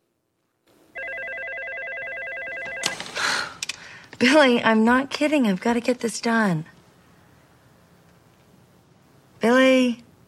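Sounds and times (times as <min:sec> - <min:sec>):
desk telephone ringing with a warbling electronic trill: 0:01.0 - 0:03.1
speech: 0:04.2 - 0:06.7.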